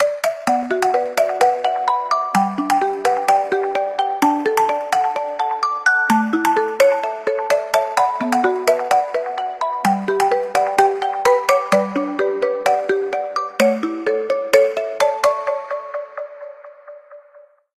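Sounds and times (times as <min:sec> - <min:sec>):
marimba phone ringtone: 0:00.0 - 0:16.2.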